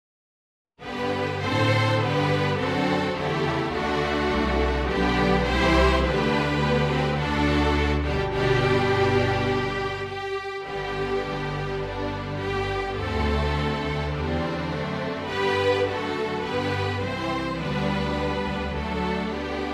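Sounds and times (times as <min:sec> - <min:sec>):
traditional string orchestra or quintet playing: 0:00.8 - 0:19.7.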